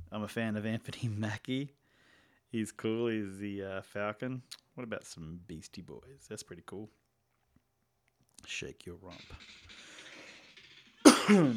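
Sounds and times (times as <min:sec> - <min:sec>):
speech: 0:00.1 - 0:01.8, 0:02.5 - 0:07.0, 0:08.4 - 0:09.9, 0:11.3 - 0:11.5
person coughing: 0:11.0 - 0:11.5.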